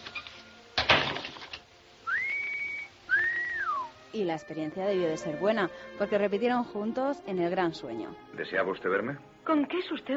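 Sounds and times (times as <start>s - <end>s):
rustling: 0.0s - 2.9s
person whistling two rising notes: 2.0s - 3.9s
speech: 4.1s - 10.1s.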